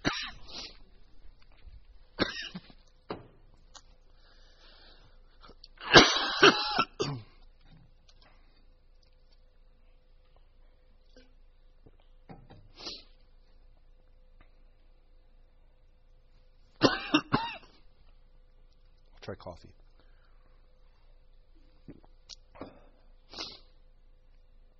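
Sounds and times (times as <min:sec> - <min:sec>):
person coughing: 0:00.0 - 0:00.4, 0:02.2 - 0:02.7, 0:05.8 - 0:07.4, 0:16.8 - 0:17.8
person clearing throat: 0:02.2 - 0:02.7, 0:05.8 - 0:07.4, 0:16.8 - 0:17.7
speech: 0:19.3 - 0:19.9.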